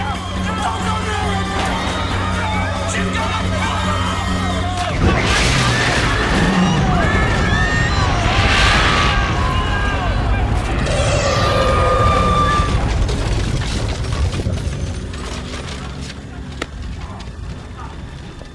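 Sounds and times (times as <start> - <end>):
people shouting frantically: 0.0 - 13.2
explosion rumble and crackle in a courtroom: 4.9 - 18.5.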